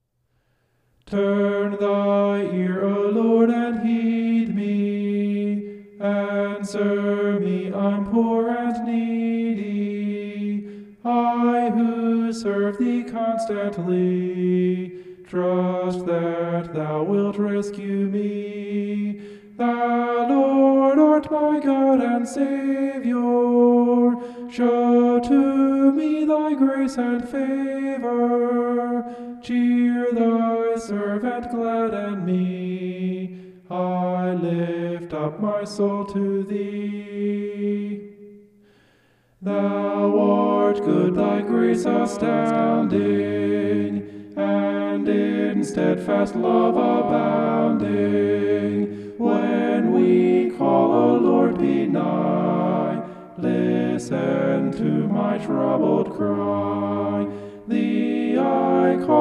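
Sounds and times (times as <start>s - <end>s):
homophonic vocal singing: 1.1s - 38.3s, 39.4s - 59.1s.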